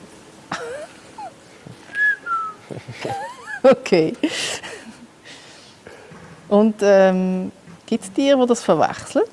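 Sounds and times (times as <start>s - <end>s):
person whistling to call guineafowl: 1.9s - 2.6s
laughter: 2.0s - 5.0s
speech: 2.8s - 4.6s, 6.5s - 9.3s.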